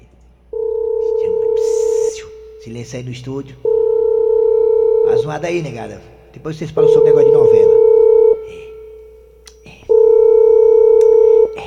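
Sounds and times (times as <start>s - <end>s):
faint noise: 0.0s - 11.6s
telephone dial tone as a call is placed: 0.6s - 2.0s, 3.7s - 5.1s, 6.8s - 8.4s, 9.9s - 11.5s
speech: 2.6s - 3.7s, 5.1s - 7.7s.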